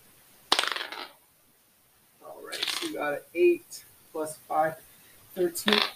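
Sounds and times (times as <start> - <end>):
twenty-sided die rolling on a hard tabletop: 0.5 - 1.2, 2.5 - 3.0, 5.7 - 5.9
speech: 3.0 - 5.9.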